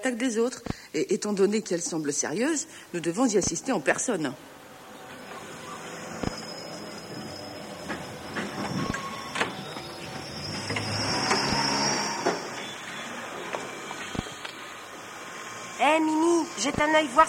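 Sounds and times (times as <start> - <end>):
speech: 0.0 - 4.6, 16.7 - 17.2
metro train carriage in motion rattling: 4.0 - 15.3
faint high whine overhead: 4.3 - 17.2
wheels clunking over rail joints: 5.0 - 15.1.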